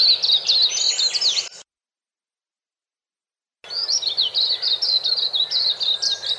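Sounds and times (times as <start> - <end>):
white-eye singing a rapid high tinkling twitter: 0.0 - 1.7, 3.7 - 6.3.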